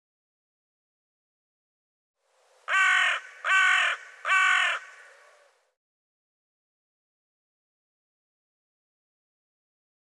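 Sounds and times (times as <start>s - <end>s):
bird harsh raspy caws: 2.7s - 5.5s.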